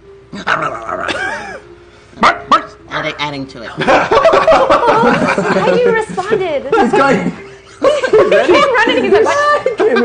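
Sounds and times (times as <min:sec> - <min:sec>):
pack of wild dogs snarling and barking while tearing apart a corpse in a plaza: 0:00.3 - 0:01.4, 0:02.2 - 0:02.8
speech: 0:00.4 - 0:01.2, 0:03.1 - 0:07.4, 0:08.1 - 0:10.0
laughter: 0:03.8 - 0:10.0.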